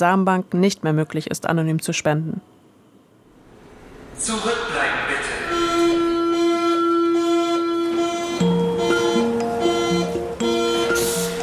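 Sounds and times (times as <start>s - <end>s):
speech: 0.0s - 2.5s, 4.2s - 4.9s
subway train electric motors whining as it departs a station: 3.1s - 11.4s.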